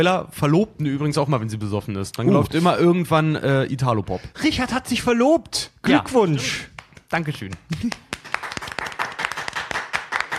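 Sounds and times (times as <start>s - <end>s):
speech: 0.0s - 8.1s
small group applauding: 6.5s - 10.3s.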